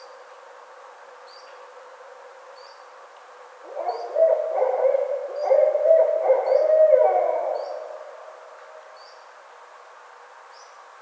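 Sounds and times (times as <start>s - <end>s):
barred owl caterwauling with wavering hoots: 3.7s - 8.9s.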